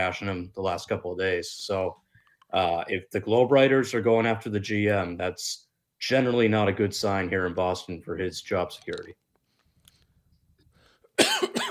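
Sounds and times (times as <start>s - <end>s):
speech: 0.0s - 9.2s
harsh coughs: 11.2s - 11.6s.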